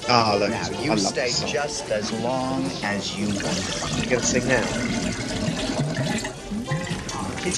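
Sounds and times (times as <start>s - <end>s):
speech: 0.1s - 6.2s
woman pouring a drink from a jug: 3.2s - 7.5s.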